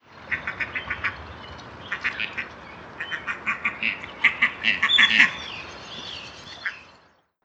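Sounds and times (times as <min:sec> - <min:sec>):
Gadwall Mareca strepera: 0:00.2 - 0:05.4.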